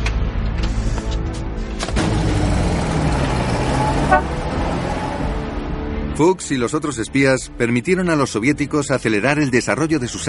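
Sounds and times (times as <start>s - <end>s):
old Buick car driving by with rough engine rumble: 0.0s - 4.9s
old Buick car horn toots: 4.0s - 4.4s
speech: 6.2s - 10.2s.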